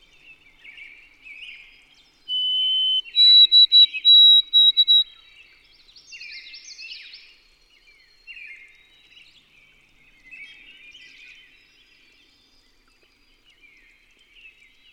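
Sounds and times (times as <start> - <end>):
soft background twittering: 0.0 - 14.9
white-throated sparrow whistling: 2.3 - 5.0.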